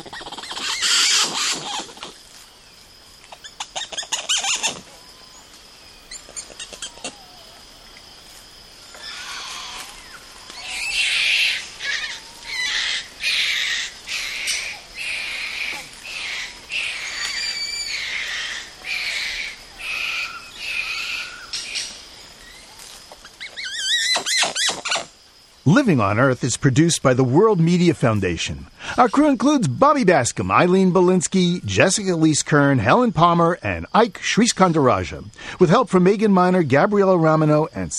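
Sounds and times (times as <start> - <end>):
Atlantic Forest wildlife squealing and chattering in Brazil: 0.0 - 2.4, 3.2 - 8.1, 8.8 - 25.2
speech: 25.7 - 37.9.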